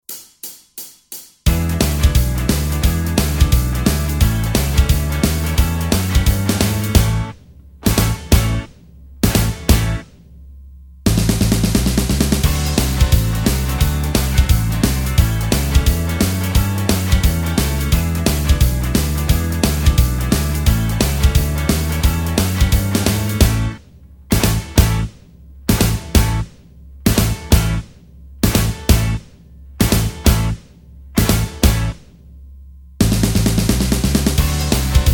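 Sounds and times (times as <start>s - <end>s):
guitar backing track without lead guitar: 1.4s - 10.4s, 11.1s - 32.2s, 33.0s - 35.1s.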